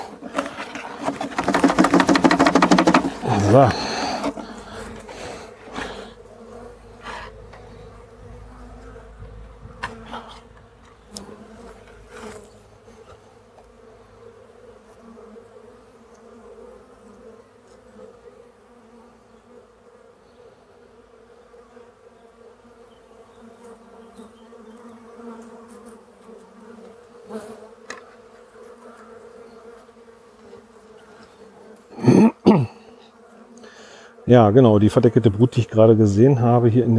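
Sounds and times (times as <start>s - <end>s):
bee box stamped on the ground: 0.0s - 4.5s
many honeybees buzzing around a hive box: 0.0s - 36.9s
speech: 3.5s - 3.8s, 34.3s - 36.9s.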